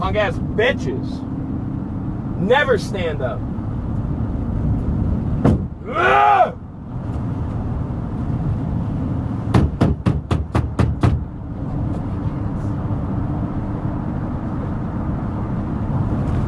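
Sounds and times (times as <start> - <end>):
steady truck engine rumble: 0.0 - 16.4
speech: 0.1 - 1.3, 2.4 - 3.5, 5.8 - 6.6
man pounding on a truck with metallic bangs: 5.4 - 5.8, 9.5 - 11.3.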